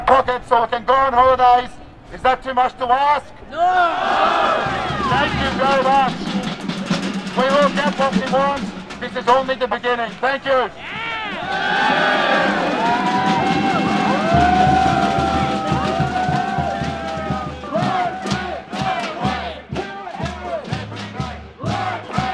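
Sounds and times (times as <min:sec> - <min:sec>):
speech: 0:00.1 - 0:13.0
people shouting and whooping: 0:03.5 - 0:05.6, 0:10.8 - 0:18.6
protest rally crowd roaring and cheering: 0:03.5 - 0:08.3, 0:10.6 - 0:22.3
rhythmic low thuds: 0:04.1 - 0:22.3.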